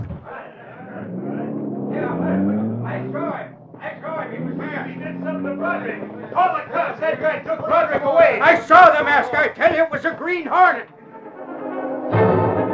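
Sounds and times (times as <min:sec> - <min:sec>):
car engine revving and accelerating away: 0:00.0 - 0:08.8
speech: 0:05.5 - 0:10.9.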